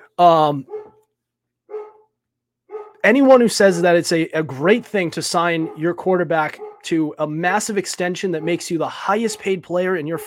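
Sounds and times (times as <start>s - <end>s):
speech: 0.2s - 0.8s, 3.0s - 10.2s
dog barking: 0.6s - 1.0s, 1.7s - 2.1s, 2.7s - 3.0s, 5.5s - 6.9s, 8.4s - 8.7s, 9.3s - 10.2s
dog giving a soft short yip: 0.7s - 1.0s, 1.7s - 2.1s, 2.7s - 3.0s, 5.6s - 6.0s, 6.6s - 6.9s.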